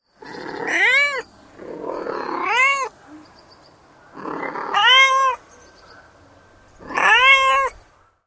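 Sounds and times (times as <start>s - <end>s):
cat meowing: 0.4s - 2.9s, 4.2s - 5.4s, 6.8s - 7.8s.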